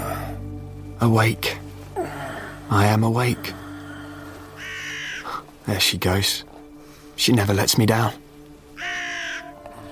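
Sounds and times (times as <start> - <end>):
speech: 1.0 - 1.6, 2.7 - 3.6, 5.6 - 6.5, 7.2 - 8.2
crow cawing on a streetlight: 3.6 - 5.6, 8.7 - 9.8.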